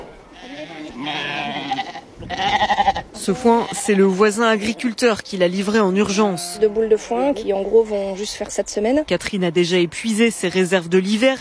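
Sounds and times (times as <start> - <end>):
ewes and suckling lambs bleating at feeding: 0.3 - 5.0, 6.0 - 6.9
speech: 0.6 - 1.4, 2.2 - 11.4.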